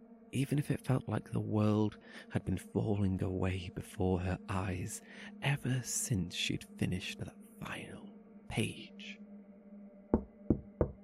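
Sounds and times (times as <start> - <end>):
speech: 0.3 - 9.2
firm knocking on a door: 10.2 - 11.0.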